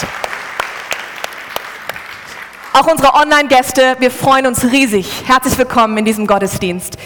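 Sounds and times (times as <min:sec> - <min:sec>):
crowd clapping in a church service: 0:00.0 - 0:03.4
speech: 0:02.8 - 0:07.0.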